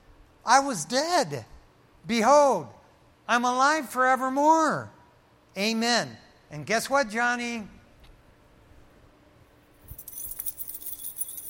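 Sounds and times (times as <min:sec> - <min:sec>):
speech: 0:00.5 - 0:05.0, 0:05.6 - 0:07.8
bunch of keys jangling: 0:09.8 - 0:11.4.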